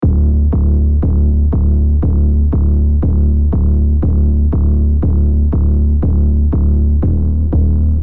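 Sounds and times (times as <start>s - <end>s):
cinematic trailer pulse: 0.0s - 8.0s.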